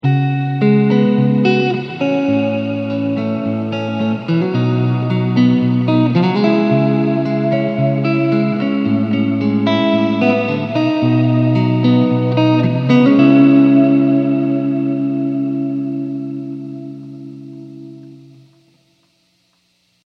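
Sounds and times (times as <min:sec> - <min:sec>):
guitar through rv5 mod: 0:00.0 - 0:20.0.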